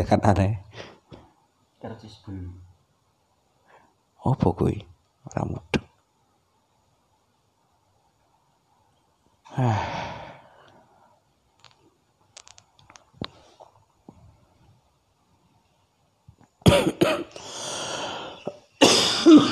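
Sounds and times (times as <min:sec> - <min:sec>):
speech: 0:00.0 - 0:00.7, 0:01.8 - 0:02.6, 0:04.2 - 0:05.8, 0:09.6 - 0:10.2
breaths: 0:03.6 - 0:04.0, 0:09.5 - 0:11.3, 0:17.4 - 0:18.5
loud harsh coughing: 0:16.6 - 0:19.5.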